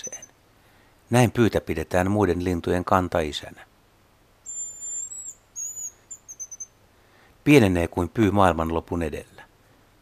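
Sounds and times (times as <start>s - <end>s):
hazel grouse whistling song: 0.0s - 0.4s, 4.4s - 6.8s
low background hiss: 0.0s - 10.0s.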